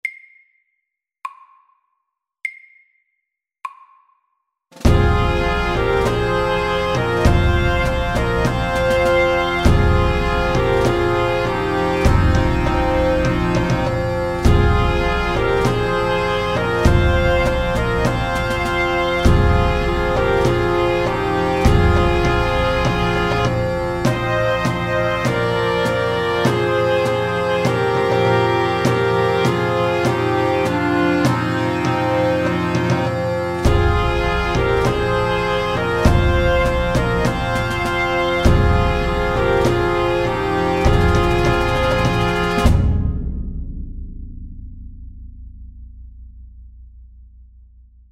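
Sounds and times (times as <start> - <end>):
pipes and drums: 4.8 - 43.3.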